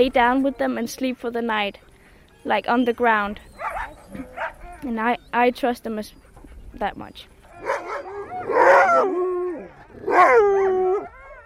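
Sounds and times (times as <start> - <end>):
sled dogs barking and yipping in Sisimiut: 0.0 - 5.4, 6.0 - 11.4
speech: 0.0 - 6.2, 6.8 - 7.3, 10.1 - 10.6
sled dogs howling in Sisimiut: 3.4 - 4.9, 7.4 - 11.4.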